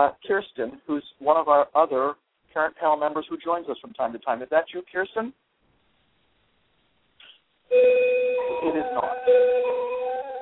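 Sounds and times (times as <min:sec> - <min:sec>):
speech: 0:00.0 - 0:05.5, 0:07.7 - 0:10.4
faint hiss: 0:00.0 - 0:07.7
bell-like electronic school bell tone: 0:07.7 - 0:10.4.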